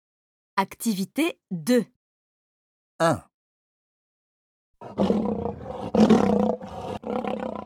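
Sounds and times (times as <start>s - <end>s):
speech: 0.6s - 2.0s, 3.0s - 3.3s, 4.8s - 6.4s
lion roaring: 4.8s - 7.6s.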